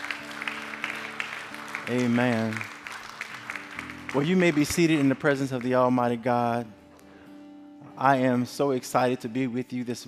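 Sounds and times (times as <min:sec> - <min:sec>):
audience clapping in praise to God: 0:00.0 - 0:06.0
speech: 0:01.9 - 0:02.7, 0:04.1 - 0:06.8, 0:08.0 - 0:10.0.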